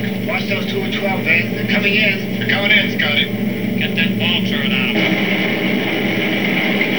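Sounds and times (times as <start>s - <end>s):
B17 engine starting: 0.0s - 6.9s.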